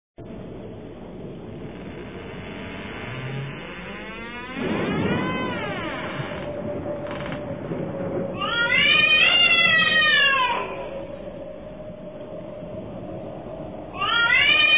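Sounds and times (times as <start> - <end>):
cat howling: 4.8 - 7.6, 8.2 - 12.2, 13.9 - 14.7.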